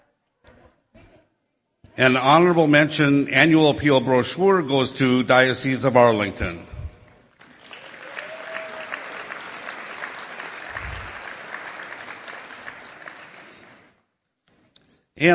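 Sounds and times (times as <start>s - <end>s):
speech: 2.0s - 6.7s, 15.2s - 15.3s
room full of people applauding an award winner: 7.4s - 13.9s.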